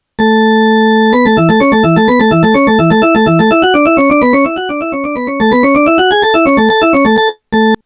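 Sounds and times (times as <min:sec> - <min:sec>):
drawbar organ: 0:00.2 - 0:07.7.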